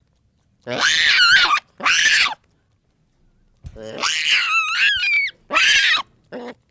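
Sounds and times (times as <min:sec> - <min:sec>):
baboon screams and wails: 0:00.7 - 0:02.4, 0:03.8 - 0:06.6.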